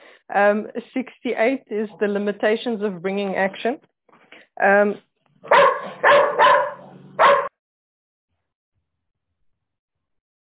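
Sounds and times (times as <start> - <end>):
speech: 0.3 - 3.9, 4.6 - 5.7
guard dog barking: 5.4 - 7.5.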